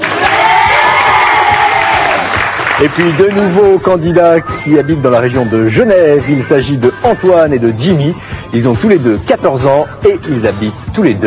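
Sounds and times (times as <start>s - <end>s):
whoops and shouts: 0.0s - 2.3s
studio audience at a televised quiz cheering: 0.0s - 3.7s
speech: 2.8s - 11.2s.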